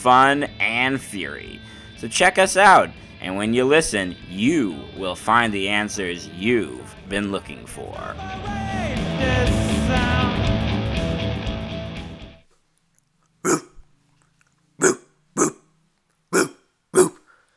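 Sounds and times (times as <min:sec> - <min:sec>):
speech: 0:00.0 - 0:10.7
person imitating dog barks: 0:13.4 - 0:13.8, 0:14.8 - 0:15.6, 0:16.4 - 0:17.2.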